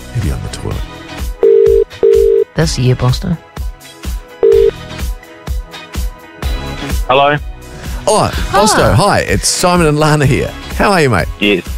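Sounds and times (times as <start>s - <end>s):
speech: 0.2s - 0.9s, 2.6s - 3.5s, 7.1s - 7.5s, 8.1s - 11.7s
electronic telephone tone as a phone call is dialled: 1.4s - 2.5s, 4.4s - 4.8s.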